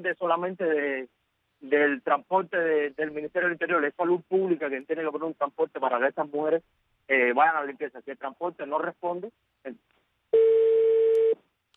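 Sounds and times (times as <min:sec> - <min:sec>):
speech: 0:00.0 - 0:11.0
telephone line tone after a dropped call: 0:10.4 - 0:11.4.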